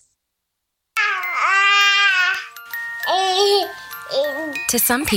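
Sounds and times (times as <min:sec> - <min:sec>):
baby babbling: 0:01.0 - 0:02.5, 0:03.0 - 0:04.6
speech: 0:04.7 - 0:05.1.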